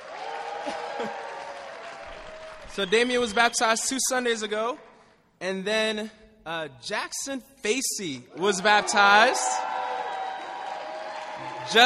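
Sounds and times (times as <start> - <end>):
audience applause: 0.0 - 4.0, 8.4 - 11.8
speech: 0.7 - 1.2, 2.7 - 9.7, 11.6 - 11.8.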